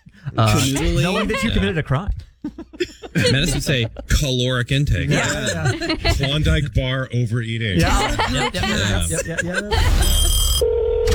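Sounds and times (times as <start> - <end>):
laughter: 0.0 - 6.8, 7.8 - 10.6
speech: 0.3 - 10.8
steady sustained beep: 9.9 - 11.1
telephone ringing with a bright electronic tone: 9.9 - 11.1.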